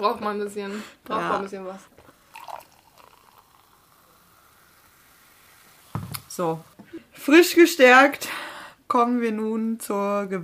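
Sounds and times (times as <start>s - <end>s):
speech: 0.0s - 2.0s, 6.4s - 10.4s
German sparkling wine poured into a glass: 2.0s - 6.8s
soft steady fizzing of sparkling wine: 2.0s - 6.8s.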